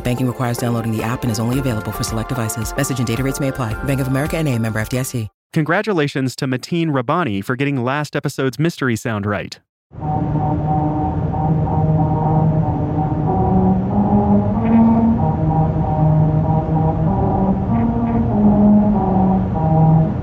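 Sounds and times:
car driving over musical road grooves cut into highway pavement: 0.0 - 4.9, 10.0 - 20.2
speech: 0.0 - 11.0.

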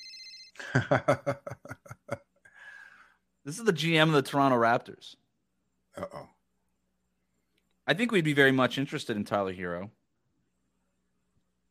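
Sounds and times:
electronic phone ring tone from an incoming call: 0.0 - 0.6
rhythmic laughter-like vocal bursts: 0.6 - 2.3
speech: 0.7 - 1.7, 3.4 - 5.2, 6.0 - 6.3, 7.9 - 10.0.

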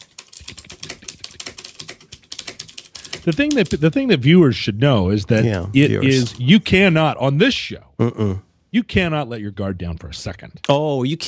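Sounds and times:
rapid typing on a computer keyboard: 0.0 - 3.8
speech: 3.2 - 11.2.

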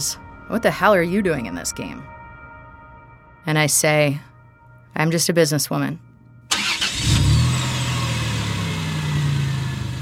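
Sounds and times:
speech: 0.0 - 2.2, 3.4 - 4.3, 4.9 - 6.1
car engine starting as the car begins to drive off: 6.5 - 10.0.

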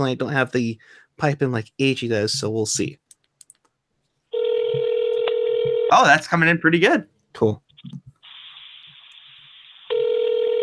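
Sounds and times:
speech: 0.0 - 3.0, 5.9 - 8.1
ringback tone on an outgoing telephone call: 4.3 - 6.0, 9.9 - 10.6
telephone line hiss: 8.2 - 10.6.

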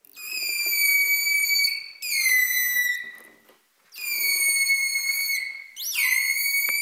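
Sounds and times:
dolphin whistling loudly in high-pitched tones: 0.2 - 6.7.

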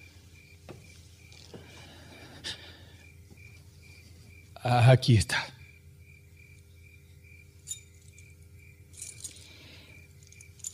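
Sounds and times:
faint steady tone: 0.0 - 10.7
quiet room hum: 0.0 - 10.7
speech: 4.6 - 5.6
keys being set down, clinking and jingling: 7.6 - 10.7.

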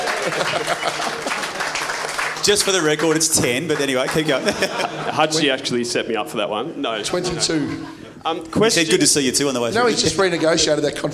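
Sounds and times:
laughter: 0.0 - 2.6, 3.7 - 5.8, 7.1 - 9.0
small group clapping: 0.0 - 5.1
speech: 0.2 - 1.6, 2.4 - 11.1.

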